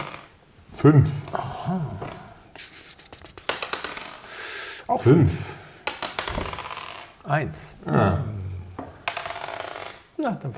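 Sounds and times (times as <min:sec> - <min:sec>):
dice clattering across a hard tabletop: 0:00.0 - 0:00.4, 0:03.3 - 0:04.3, 0:05.8 - 0:07.2, 0:08.8 - 0:10.2
speech: 0:00.8 - 0:02.2, 0:04.9 - 0:05.5, 0:07.3 - 0:08.4, 0:10.2 - 0:10.5.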